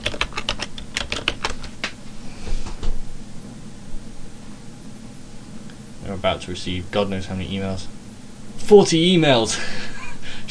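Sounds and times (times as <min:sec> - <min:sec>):
typing on a computer keyboard: 0:00.0 - 0:01.8
speech: 0:06.1 - 0:08.0, 0:08.6 - 0:09.9.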